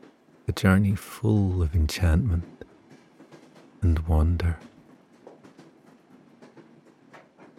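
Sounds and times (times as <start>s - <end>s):
train running on rails: 0.0s - 7.5s
train wheels clickety-clacking over track joints: 0.0s - 7.5s
speech: 0.5s - 2.6s, 3.8s - 4.7s.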